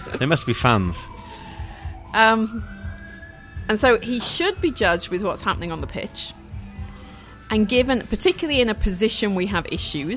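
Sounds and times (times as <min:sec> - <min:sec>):
emergency vehicle sirens passing outside: 0:00.0 - 0:07.7
low rhythmic thumping: 0:00.0 - 0:10.1
speech: 0:00.1 - 0:01.2, 0:02.1 - 0:02.8, 0:03.7 - 0:06.4, 0:07.5 - 0:10.1.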